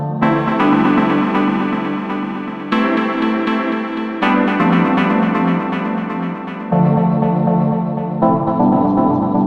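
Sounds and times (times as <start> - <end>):
dual delay effect with cross feedback: 0.2 - 9.3.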